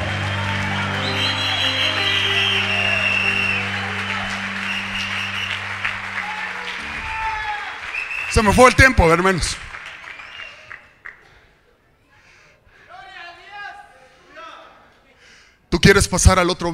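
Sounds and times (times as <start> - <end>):
sustained low organ-like tone: 0.0 - 7.4
audience applauding: 0.0 - 11.5
speech: 8.4 - 9.7, 15.8 - 16.7.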